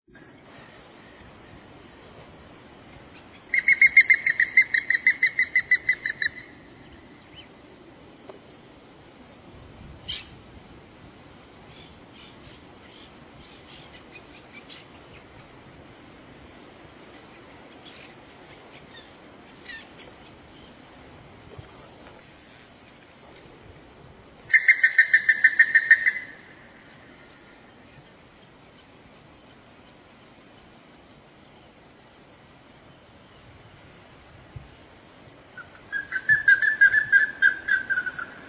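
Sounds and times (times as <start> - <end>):
Plumbeous ibis calling: 0.3 - 8.8, 10.0 - 21.0, 24.3 - 31.8, 35.5 - 38.4.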